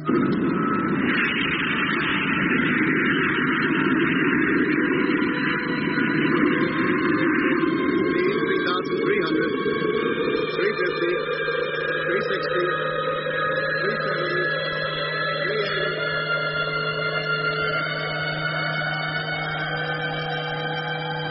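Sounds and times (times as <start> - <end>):
rocket motor firing: 0.0 - 21.2.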